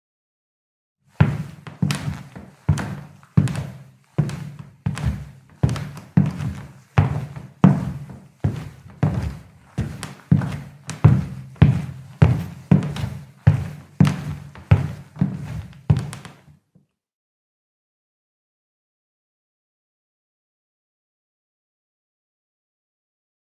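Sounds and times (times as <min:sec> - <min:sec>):
walking on parquet: 0:01.1 - 0:16.6.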